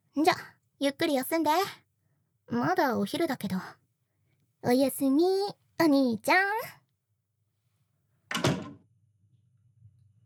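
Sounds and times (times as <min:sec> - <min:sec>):
speech: 0:00.2 - 0:01.8, 0:02.5 - 0:03.8, 0:04.6 - 0:06.8
bedroom door opening thud: 0:08.3 - 0:08.8.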